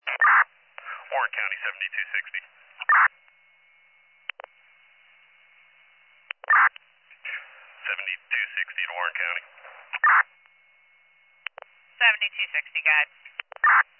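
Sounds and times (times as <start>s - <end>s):
radio dispatch paging tone beeps: 0.0s - 1.0s, 1.8s - 4.6s, 6.3s - 6.7s, 7.7s - 12.9s, 13.5s - 13.8s
brief garbled voice transmissions: 0.0s - 3.1s, 7.3s - 10.2s
speech: 1.2s - 3.2s
radio squelch clicks: 4.2s - 4.6s, 6.2s - 7.8s, 9.4s - 10.6s, 11.4s - 11.8s, 13.2s - 13.8s.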